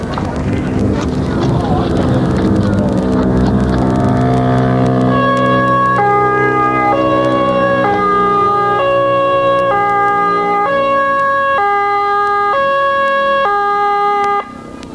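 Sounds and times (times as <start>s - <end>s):
laughter: 0.0s - 7.4s
faint ambulance engine rumble: 0.0s - 14.9s
two-tone ambulance siren arriving at the scene: 3.0s - 14.8s.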